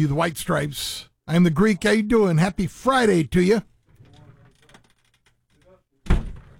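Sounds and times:
speech: 0.1s - 3.7s
door shutting with heavy thud: 6.0s - 6.5s.

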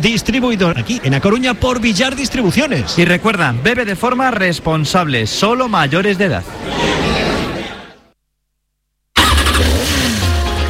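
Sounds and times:
speech: 0.0s - 7.3s
loud motorcycle engine roaring and revving: 9.2s - 10.6s.

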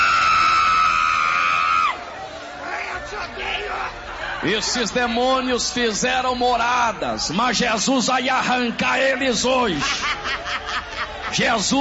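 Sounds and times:
loud sustained scream: 0.0s - 2.0s
crowd shouting and screaming: 0.0s - 11.7s
speech: 3.2s - 10.4s, 11.3s - 11.7s
laughter: 9.4s - 11.7s.

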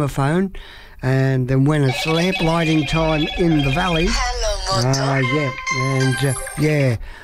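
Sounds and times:
speech: 0.0s - 7.2s
telephone ringing with a warbling melodic tone: 1.8s - 6.9s.

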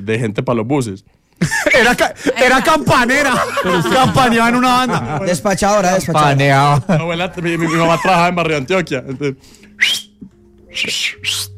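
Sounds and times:
speech: 0.0s - 10.0s, 10.7s - 11.5s
laughter: 1.4s - 9.4s
loud shrill human whistle: 9.7s - 11.5s.

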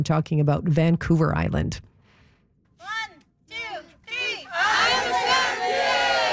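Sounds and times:
speech: 0.0s - 1.9s
kids shouting while playing soccer: 2.8s - 6.3s
overlapping yelling and cheering of kids playing soccer: 2.8s - 6.3s.

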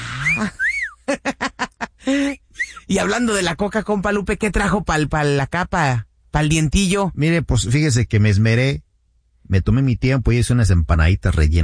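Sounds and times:
human whistling a playful catcall-style tune: 0.0s - 1.0s
speech: 0.4s - 1.5s, 2.9s - 11.6s.

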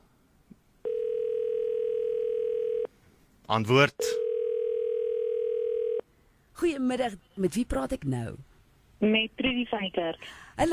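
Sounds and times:
telephone dial tone while placing a call: 0.8s - 2.9s, 4.2s - 6.0s
speech: 3.5s - 4.2s, 6.6s - 10.7s.

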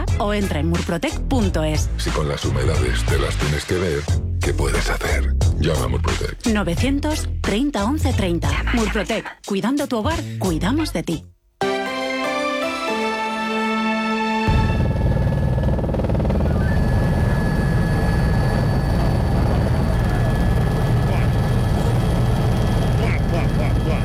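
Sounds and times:
speech: 0.2s - 11.3s
short musical snippet: 11.6s - 15.1s
loud continuous helicopter rotor noise: 14.5s - 24.0s.

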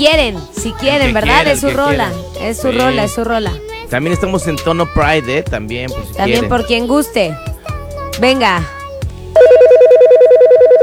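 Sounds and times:
speech: 0.0s - 7.5s, 8.1s - 8.8s, 9.4s - 9.9s
telephone ringing with an electronic two-tone trill: 9.4s - 10.8s.

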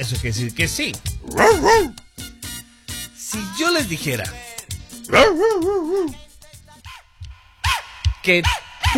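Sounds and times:
speech: 0.0s - 2.0s, 3.3s - 4.4s, 5.1s - 6.2s, 8.2s - 8.9s
pet dog yelping and whining at home: 1.2s - 2.0s, 5.1s - 6.2s.

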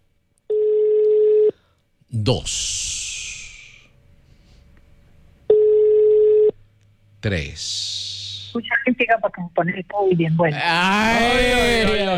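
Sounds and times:
telephone ringback tones on an outgoing call: 0.5s - 1.6s, 5.5s - 6.5s
speech: 2.1s - 3.0s, 7.2s - 12.1s.

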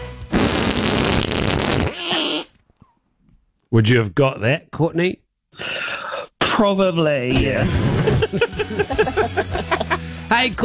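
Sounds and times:
loud drawn-out fart sound effect: 0.3s - 2.6s, 7.3s - 8.3s
speech: 3.7s - 5.7s, 6.6s - 10.6s
laughter: 7.5s - 10.1s.

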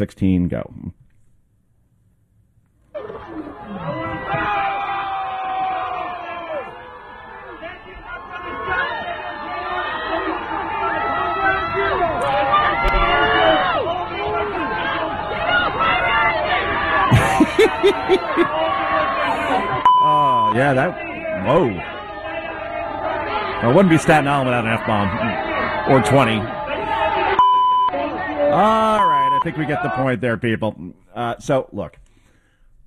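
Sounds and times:
speech: 0.0s - 1.0s, 17.8s - 18.8s, 20.0s - 21.9s, 23.6s - 26.6s, 28.6s - 32.0s
large crowd of police officers booing a mayor off stage: 2.9s - 30.2s
laughter: 3.0s - 5.3s, 7.4s - 29.9s
scattered shouts from police officers in the crowd: 3.0s - 30.2s.

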